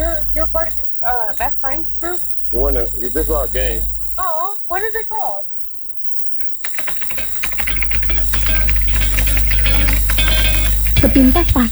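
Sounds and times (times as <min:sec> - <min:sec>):
speech: 0:00.4 - 0:05.5, 0:11.0 - 0:11.7
typing on a keyboard: 0:06.4 - 0:11.7.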